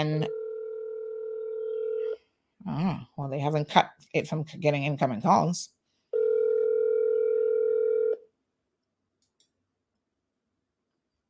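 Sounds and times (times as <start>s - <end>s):
speech: 0.0s - 0.4s, 2.6s - 5.8s
telephone dial tone while placing a call: 0.3s - 2.2s, 6.2s - 8.2s.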